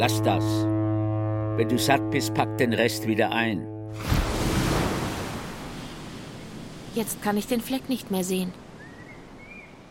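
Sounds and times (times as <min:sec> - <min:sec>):
speech: 0:00.0 - 0:00.7, 0:01.6 - 0:04.2, 0:06.9 - 0:08.6
calm sea lapping around a small boat: 0:04.0 - 0:07.0.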